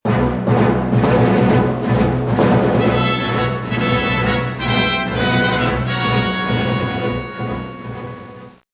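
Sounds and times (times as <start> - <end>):
fight attack music: 0.0 - 8.4.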